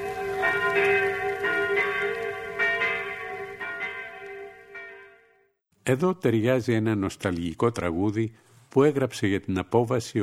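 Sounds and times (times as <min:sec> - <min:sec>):
church bells ringing in a Normandy village during a liberation celebration: 0:00.0 - 0:05.5
speech: 0:00.5 - 0:01.2, 0:05.8 - 0:10.2.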